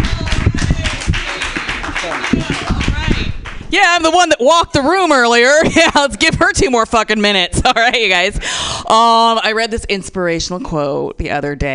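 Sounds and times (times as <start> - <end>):
audience applause: 0.0 - 3.6
speech: 3.8 - 11.7.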